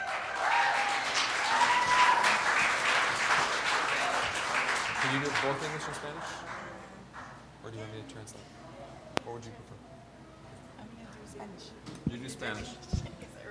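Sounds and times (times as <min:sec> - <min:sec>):
applause from an audience at a church gathering: 0:00.0 - 0:07.4.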